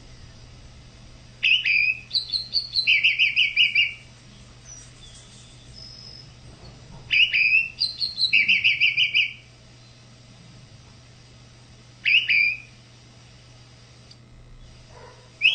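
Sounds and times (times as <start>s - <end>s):
low hum: 0.0s - 15.4s
Tropical mockingbird singing varied phrases: 1.2s - 10.1s, 12.0s - 12.8s, 15.4s - 15.5s.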